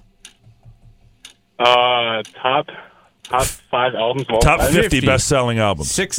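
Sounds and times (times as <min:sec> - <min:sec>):
game show timer clock ticking: 0:00.0 - 0:02.6, 0:03.2 - 0:05.4
speech: 0:01.6 - 0:06.1.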